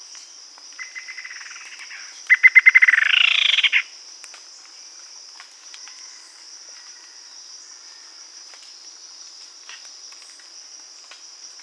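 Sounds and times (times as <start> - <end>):
bird giving trills of rapid pulses: 2.3 - 3.8.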